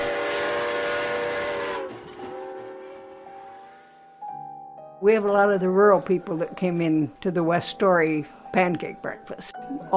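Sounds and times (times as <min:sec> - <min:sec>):
passenger train rumbling: 0:00.0 - 0:04.2
speech: 0:05.0 - 0:09.9.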